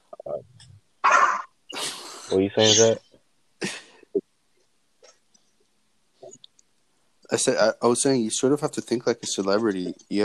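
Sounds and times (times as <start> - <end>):
speech: 0.3 - 0.6, 2.3 - 3.0, 7.3 - 10.2
dog yipping and barking: 1.0 - 1.5
dog low falling whine: 1.0 - 1.8.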